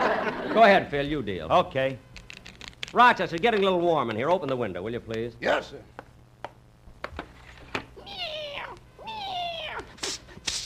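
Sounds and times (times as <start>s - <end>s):
laughter: 0.0s - 0.7s
speech: 0.6s - 2.1s, 2.9s - 6.0s
female cat meowing: 8.0s - 10.0s.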